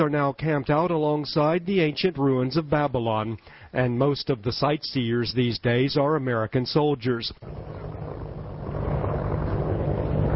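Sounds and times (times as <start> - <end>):
speech: 0.0 - 7.9
military helicopters flying overhead: 7.4 - 10.3.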